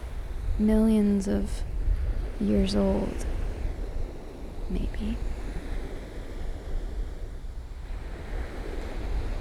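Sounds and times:
low wind rumble against the microphone: 0.0s - 9.3s
sea waves washing onto a pebble beach on a windy day: 0.0s - 9.3s
speech: 0.6s - 1.8s, 2.4s - 3.3s, 4.7s - 5.4s.

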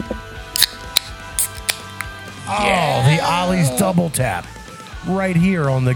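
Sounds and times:
beer cans cracked open: 0.5s - 2.2s
speech: 2.5s - 5.9s.

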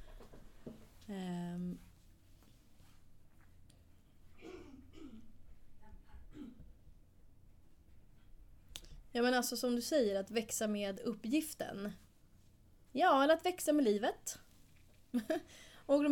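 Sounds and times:
speech: 1.1s - 1.9s, 9.2s - 12.0s, 13.0s - 14.4s, 15.1s - 16.0s
person coughing: 4.4s - 5.3s, 6.3s - 6.7s
person clearing throat: 4.4s - 5.4s, 6.3s - 6.7s.

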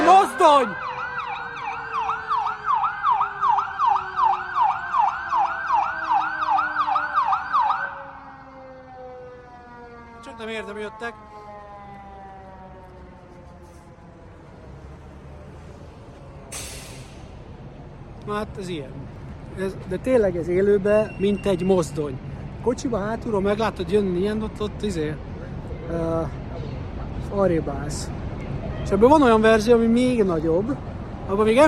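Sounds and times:
fire truck siren yelping: 0.0s - 17.8s
speech: 0.4s - 0.9s, 10.8s - 11.5s, 18.3s - 25.3s, 25.9s - 26.4s, 27.2s - 28.2s, 28.9s - 31.6s
fire truck air-brake hiss: 16.5s - 17.4s.

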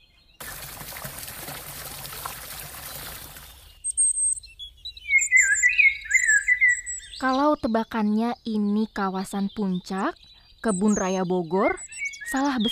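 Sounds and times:
birds chirping in the DPR RI urban forest in central Jakarta: 0.0s - 12.7s
rush of splashing water: 0.4s - 3.7s
speech: 7.2s - 12.7s.

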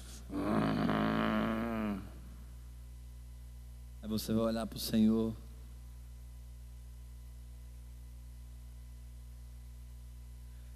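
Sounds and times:
person imitating wolves growling with a rough throaty rumble: 0.3s - 2.2s
speech: 4.1s - 5.4s.

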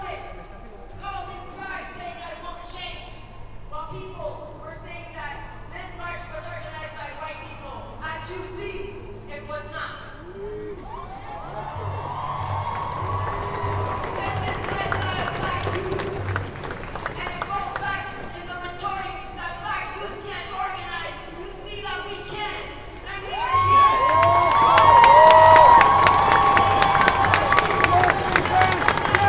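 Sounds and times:
overlapping crowd voices at a street protest march: 10.1s - 29.2s.

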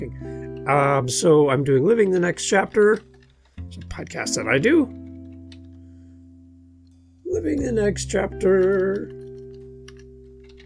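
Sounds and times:
speech: 0.0s - 3.1s, 3.7s - 5.0s, 7.4s - 9.2s
fingers typing on a computer keyboard: 1.9s - 5.8s, 8.4s - 10.6s.

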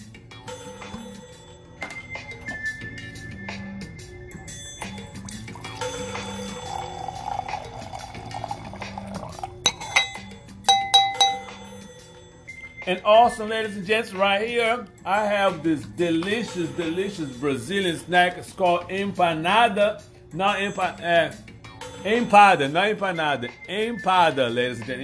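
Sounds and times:
soft music: 0.0s - 25.0s
red wine pouring into a glass: 5.0s - 10.3s
bright glass clinks: 9.6s - 11.8s
speech: 12.9s - 21.4s, 22.0s - 25.0s.

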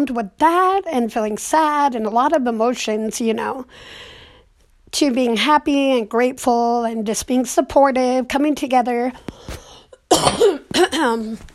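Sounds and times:
speech: 0.0s - 4.2s, 4.9s - 11.5s
person clearing throat: 10.1s - 11.4s
person coughing: 10.1s - 11.4s.

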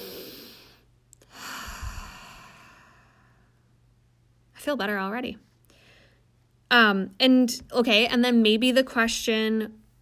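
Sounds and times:
person taking a deep breath: 0.0s - 3.6s, 5.7s - 6.3s
speech: 4.6s - 5.5s, 6.7s - 9.8s.

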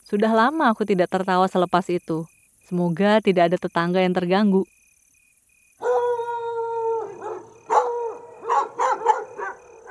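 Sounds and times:
speech: 0.1s - 4.8s
dog howling and yelping: 5.8s - 9.8s.

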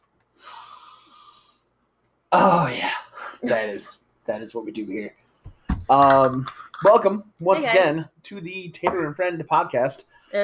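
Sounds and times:
deep sniff of a scented candle through the nose: 0.4s - 1.7s
speech: 2.3s - 5.2s, 5.9s - 10.4s.

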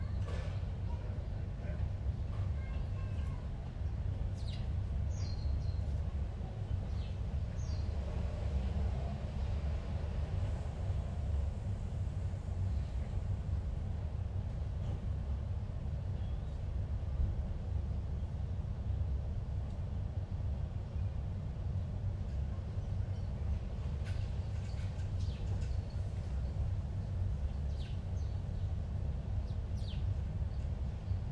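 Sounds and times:
heavy low rumble of passing traffic or a train: 0.0s - 31.3s.

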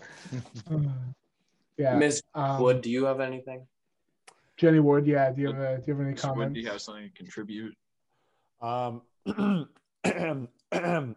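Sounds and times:
speech: 0.3s - 1.2s, 1.8s - 3.7s, 4.6s - 7.8s, 8.6s - 11.1s
person clearing throat: 9.2s - 11.1s.

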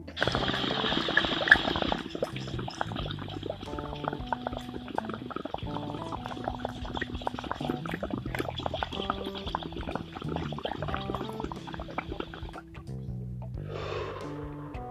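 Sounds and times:
water bubbling and gurgling through a dab rig: 0.1s - 13.1s
breathy exhale: 13.6s - 14.8s.

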